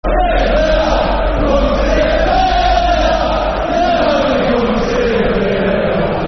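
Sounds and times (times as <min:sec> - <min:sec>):
football chant: 0:00.0 - 0:06.2.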